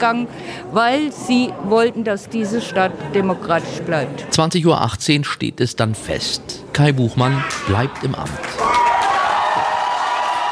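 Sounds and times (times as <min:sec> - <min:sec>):
speech: 0:00.0 - 0:08.8
crowd in Nordhausen Germany cheering at an election result: 0:07.2 - 0:10.5.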